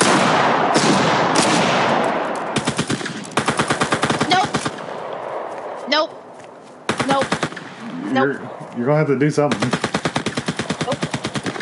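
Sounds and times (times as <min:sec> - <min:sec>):
automatic gunfire in a video game: 0:00.0 - 0:04.9, 0:06.9 - 0:07.8, 0:09.5 - 0:11.6
speech: 0:08.2 - 0:09.8.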